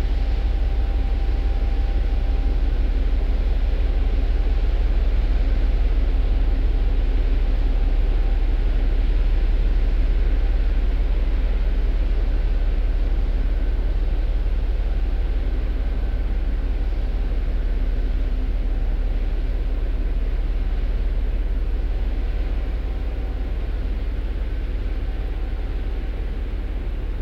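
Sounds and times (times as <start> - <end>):
faint constant whine: 0.0 - 27.2
large ship engine rumble passing slowly in a busy fjord: 0.0 - 27.2.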